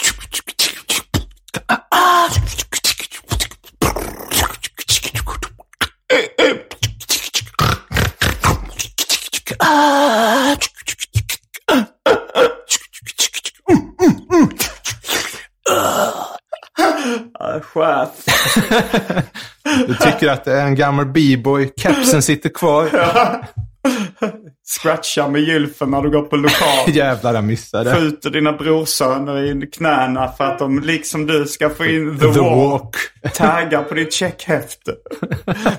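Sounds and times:
vocal beatboxing with mouth-made kicks, snares and hi-hats: 0.0 - 16.8, 18.3 - 20.4, 21.7 - 23.8, 26.0 - 28.1, 31.6 - 33.9
laughter: 18.2 - 20.5, 21.8 - 24.6, 26.4 - 27.3, 31.8 - 35.7
speech: 20.2 - 23.6, 24.2 - 35.7.

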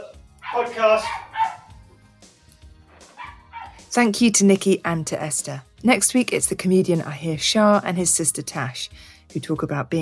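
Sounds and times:
dog barking with harsh yelping barks: 0.4 - 1.8, 2.9 - 3.9
speech: 0.6 - 1.3, 3.9 - 9.9.

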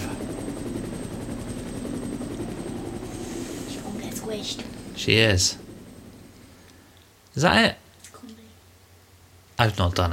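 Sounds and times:
video game helicopter rotor whirring: 0.0 - 7.6
speech: 4.3 - 5.6, 7.4 - 7.8, 9.6 - 10.1.

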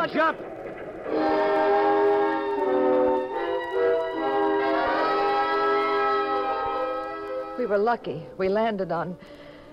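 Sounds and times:
speech: 0.0 - 1.8, 7.6 - 9.4
passing train whistle blowing: 1.1 - 7.6.

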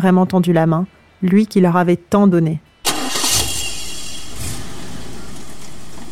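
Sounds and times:
speech: 0.0 - 2.7
car engine cranking, starting and running: 2.9 - 6.0.

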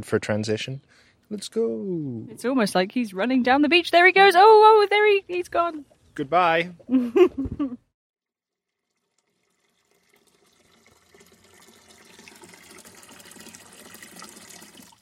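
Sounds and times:
speech: 0.0 - 7.8
water running from a water butt tap: 8.7 - 15.0.

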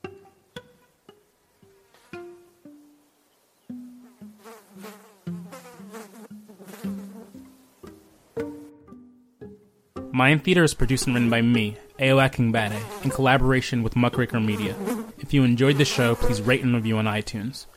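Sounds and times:
fly buzzing: 1.7 - 8.7, 12.5 - 13.4, 14.3 - 16.8
speech: 10.2 - 17.7.

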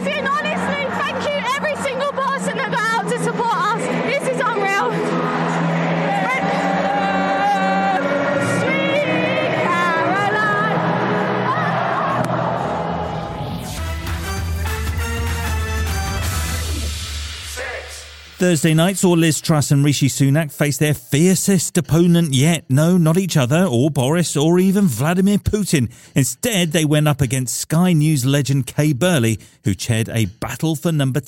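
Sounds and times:
huge stadium crowd singing together in unison: 0.0 - 13.7
stadium crowd cheering and shouting: 0.0 - 18.2
speech: 18.4 - 31.2.

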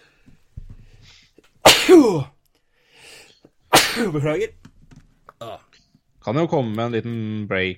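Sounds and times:
person sneezing: 1.6 - 2.3, 3.7 - 4.3
speech: 1.9 - 2.4, 4.0 - 4.6, 5.4 - 7.7.

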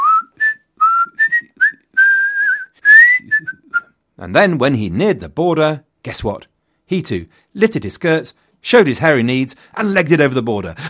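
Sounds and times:
casual tuneful whistling of a meandering melody: 0.0 - 4.0
speech: 4.2 - 10.8.

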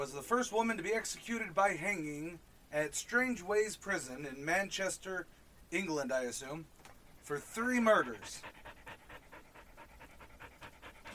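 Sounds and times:
speech: 0.0 - 8.6
puppy panting rapidly: 7.4 - 11.1.

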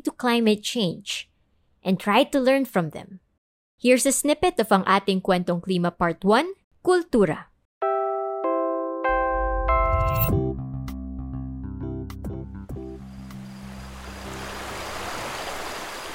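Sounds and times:
speech: 0.0 - 3.2, 3.8 - 7.5
bright chiming music with deep bass tones: 7.8 - 14.0
flowing river water: 13.2 - 16.1.

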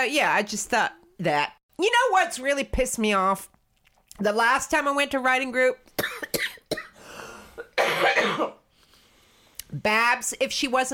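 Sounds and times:
speech: 0.0 - 3.6, 4.2 - 6.6, 9.7 - 10.9
person coughing with a harsh hacking cough: 6.0 - 7.0, 7.6 - 8.6.

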